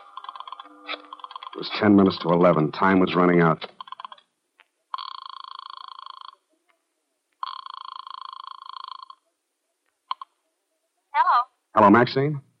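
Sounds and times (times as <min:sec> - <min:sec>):
telephone line ringing from a phone booth in a residential hotel lobby: 0:00.0 - 0:04.3, 0:04.9 - 0:06.5, 0:07.4 - 0:09.2
speech: 0:00.6 - 0:03.8, 0:11.8 - 0:12.5.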